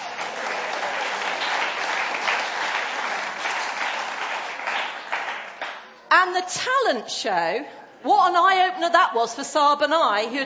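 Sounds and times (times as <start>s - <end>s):
room full of people applauding: 0.0s - 5.9s
speech: 6.2s - 10.4s.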